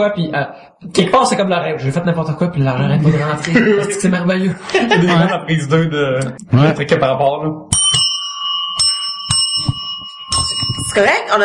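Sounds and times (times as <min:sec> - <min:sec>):
speech: 0:00.0 - 0:07.8, 0:11.0 - 0:11.4
laughter: 0:02.6 - 0:07.0
two bells ringing with bright metallic tones: 0:07.7 - 0:11.4.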